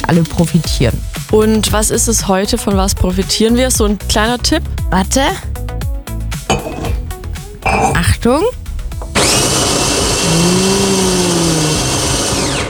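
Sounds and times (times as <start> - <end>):
speech: 0.1 - 5.6, 8.2 - 8.6
coffee machine clattering and clinking: 6.5 - 7.0
coffee machine grinding whir with rising whine: 9.0 - 12.6.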